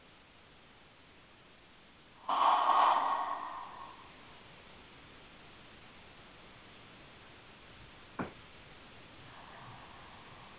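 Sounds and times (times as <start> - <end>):
long deep breath close to the microphone: 2.2 - 4.5, 9.2 - 10.5.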